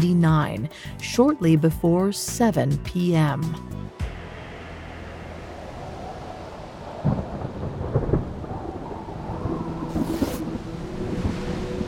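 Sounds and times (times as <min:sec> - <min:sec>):
speech: 0:00.0 - 0:03.8
steady rain hissing in a thunderstorm: 0:04.1 - 0:11.8
deep rolling thunder: 0:04.5 - 0:11.8.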